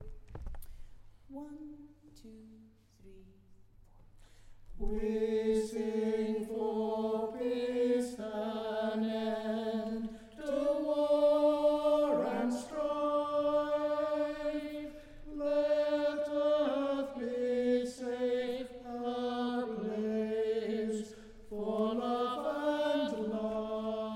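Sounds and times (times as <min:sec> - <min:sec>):
tenor singing an anthem: 0:04.8 - 0:24.1.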